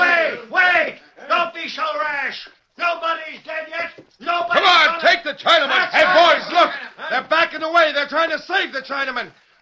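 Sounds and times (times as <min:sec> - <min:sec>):
angry mob shouting: 0:00.0 - 0:07.3
speech: 0:08.1 - 0:09.4.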